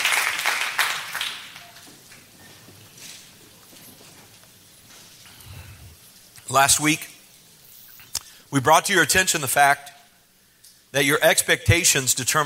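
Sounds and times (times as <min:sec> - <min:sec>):
church audience clapping hands: 0:00.0 - 0:02.3
speech: 0:06.5 - 0:07.1, 0:08.5 - 0:09.9, 0:10.9 - 0:12.4.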